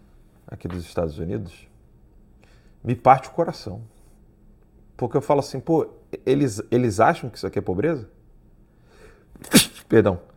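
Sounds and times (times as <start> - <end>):
speech: 0.5 - 1.7, 2.8 - 4.0, 5.0 - 8.2, 9.4 - 10.3
person sneezing: 9.4 - 9.9.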